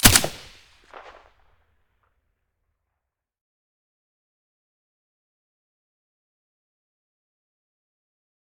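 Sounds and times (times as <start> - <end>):
SCAR rifle silencer shot: 0.0 - 1.2.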